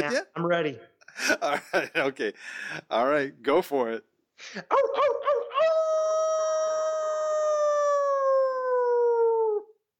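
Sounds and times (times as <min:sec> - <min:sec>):
speech: 0:00.1 - 0:05.7
person imitating a howl: 0:04.7 - 0:09.7.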